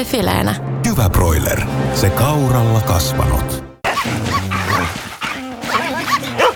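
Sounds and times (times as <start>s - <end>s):
speech: 0.0s - 4.3s
dog barking and whimpering: 3.9s - 6.5s.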